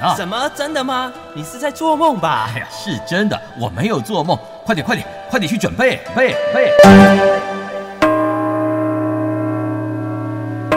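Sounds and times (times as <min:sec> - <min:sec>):
speech: 0:00.0 - 0:07.6
deep church bells tolling: 0:05.4 - 0:09.9.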